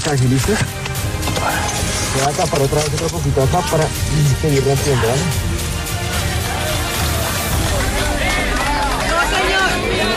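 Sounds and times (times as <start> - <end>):
speech: 0.1 - 5.5
many overlapping voices: 1.3 - 10.1
large crowd clapping outdoors during a rubble rescue: 5.8 - 10.1.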